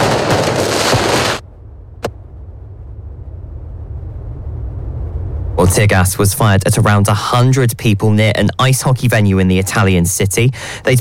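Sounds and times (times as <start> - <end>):
firecrackers going off outdoors during protests: 0.0 - 1.4
low steady rumble of noise: 0.0 - 10.9
speech: 5.6 - 10.9.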